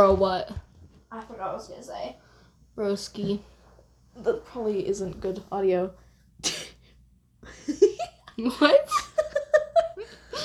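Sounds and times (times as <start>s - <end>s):
speech: 0.0s - 2.2s, 2.8s - 3.5s, 4.2s - 6.7s, 7.4s - 9.1s
person coughing while choking on air: 6.4s - 6.8s.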